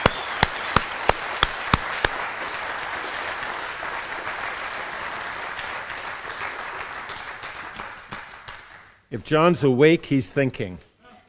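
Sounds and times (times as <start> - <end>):
audience applauding: 0.0 - 8.9
loud claps: 0.0 - 9.0
speech: 9.1 - 10.9.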